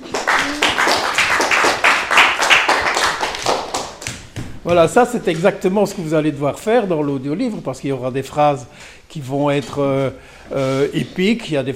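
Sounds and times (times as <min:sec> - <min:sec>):
audience clapping hands in applause: 0:00.0 - 0:04.7
speech: 0:04.7 - 0:11.7.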